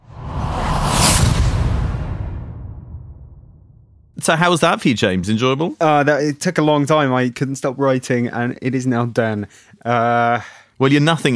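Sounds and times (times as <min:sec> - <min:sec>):
whoosh sound effect: 0:00.0 - 0:04.1
speech: 0:04.2 - 0:11.3.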